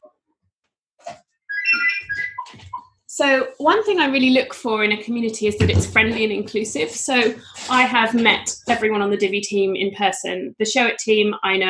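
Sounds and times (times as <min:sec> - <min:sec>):
phone ringing with bright electronic ringtone notes: 0:01.5 - 0:02.8
speech: 0:03.2 - 0:11.6.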